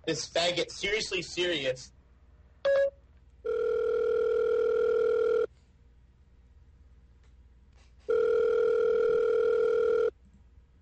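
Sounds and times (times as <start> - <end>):
speech: 0.0 - 2.0
telephone ringtone electronic tone: 2.7 - 5.5, 8.1 - 10.1.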